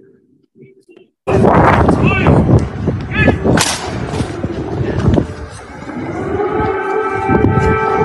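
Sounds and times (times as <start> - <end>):
voices in busy street noise: 0.0 - 8.0
air raid siren sounding: 3.9 - 8.0.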